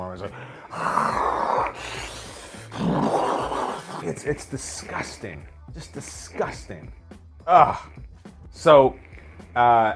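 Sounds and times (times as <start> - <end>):
speech: 0.2 - 1.2, 4.0 - 9.9
voice imitating loud rasping cartoon grizzly bear snoring: 0.6 - 5.0.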